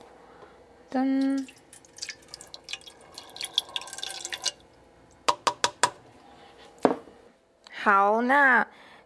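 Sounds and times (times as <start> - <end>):
speech: 0.9 - 1.6, 7.8 - 8.8
water poured into an electric cooker's outer pot: 1.2 - 4.8
sharp drips or taps: 1.2 - 5.2.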